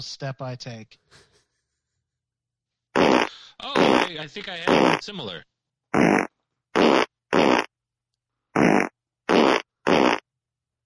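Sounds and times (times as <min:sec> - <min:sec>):
speech: 0:00.0 - 0:01.3, 0:03.7 - 0:06.2
fart sounds: 0:03.0 - 0:05.2, 0:06.0 - 0:07.7, 0:08.5 - 0:10.3.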